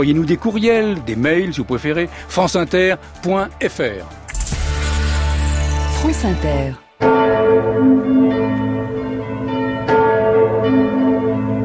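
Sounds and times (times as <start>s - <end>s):
speech: 0.0s - 4.2s, 6.0s - 8.0s
large cathedral bells ringing in Marseille France: 5.4s - 11.6s.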